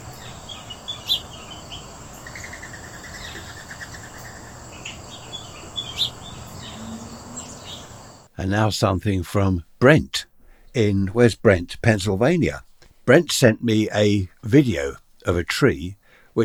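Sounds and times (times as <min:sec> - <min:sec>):
faint calls: 0:00.0 - 0:08.3
insects buzzing: 0:00.0 - 0:08.3
morning birdsong outdoors with sharp high chirps: 0:00.0 - 0:08.3
speech: 0:08.4 - 0:16.4.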